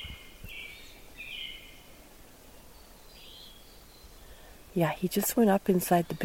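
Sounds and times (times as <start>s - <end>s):
eastern phoebe singing: 0.0s - 6.2s
soft outdoor hiss: 0.0s - 6.2s
speech: 4.8s - 6.2s.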